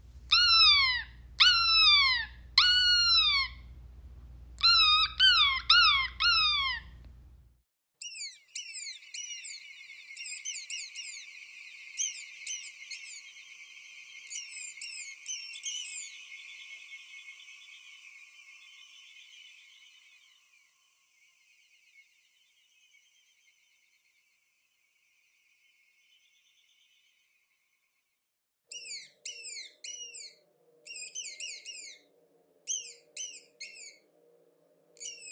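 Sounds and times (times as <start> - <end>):
distressed bird calling: 0.3 - 3.7, 4.6 - 7.0.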